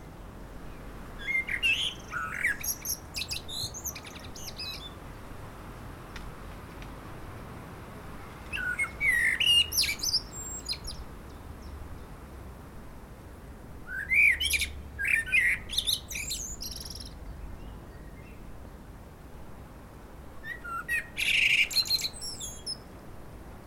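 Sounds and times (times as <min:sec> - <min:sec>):
common blackbird Turdus merula singing: 0:01.2 - 0:05.0, 0:08.5 - 0:11.8, 0:13.9 - 0:18.5, 0:20.4 - 0:22.8.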